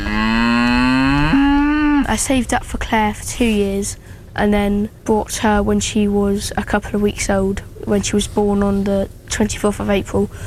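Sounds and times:
cow mooing: 0:00.0 - 0:02.1
speech: 0:02.1 - 0:10.4.

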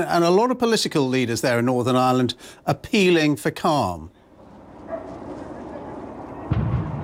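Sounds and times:
speech: 0:00.0 - 0:04.2
faint indistinct voices: 0:05.0 - 0:06.6
dull explosion from a burning articulated bus in Northern Ireland: 0:06.4 - 0:07.0.

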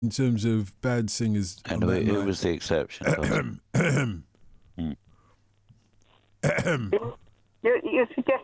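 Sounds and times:
speech: 0:00.0 - 0:05.0, 0:06.4 - 0:08.4
man clearing his throat in loud rough bursts: 0:03.0 - 0:05.0, 0:06.4 - 0:07.2.

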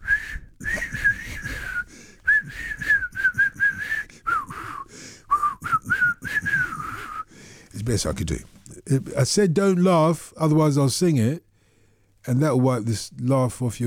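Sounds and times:
person attempting to whistle a wobbly breathy tune: 0:00.0 - 0:07.3
speech: 0:07.9 - 0:11.5, 0:12.2 - 0:13.8.

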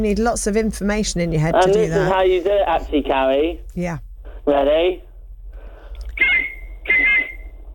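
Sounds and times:
speech: 0:00.0 - 0:05.1
faint hum: 0:00.0 - 0:07.7
referee's whistle blasts: 0:06.2 - 0:07.6.

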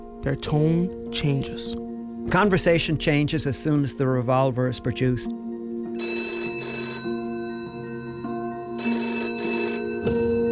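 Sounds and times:
speech: 0:00.2 - 0:05.4
telephone ringing with bell-like trill: 0:05.9 - 0:10.5.

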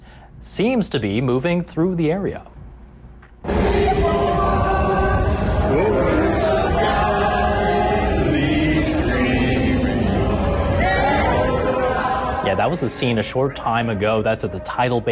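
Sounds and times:
wash of noise: 0:00.0 - 0:15.1
speech: 0:00.4 - 0:02.5, 0:12.6 - 0:15.1
large crowd singing the national anthem outdoors: 0:03.4 - 0:15.1.

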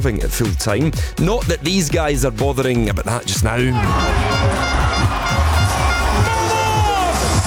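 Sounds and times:
speech: 0:00.0 - 0:05.2
steady rhythmic pulse: 0:03.4 - 0:07.4
large crowd celebrating at a team bus parade: 0:03.7 - 0:07.4
horn-like tone: 0:03.8 - 0:06.7.

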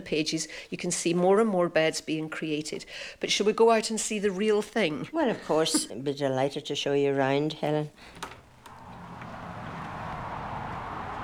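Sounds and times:
speech: 0:00.0 - 0:08.4
cars whizzing past on a road: 0:08.1 - 0:11.2.

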